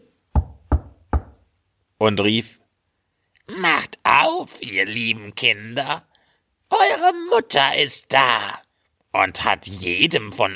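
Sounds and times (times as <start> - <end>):
firm knocking on a wooden front door: 0.4 - 1.4
speech: 2.0 - 2.6, 3.5 - 6.1, 6.7 - 10.5.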